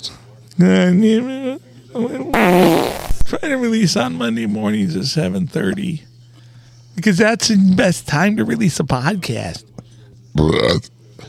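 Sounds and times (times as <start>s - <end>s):
speech: 0.0s - 6.1s, 7.0s - 9.7s, 10.4s - 10.9s
loud fart: 2.3s - 3.4s.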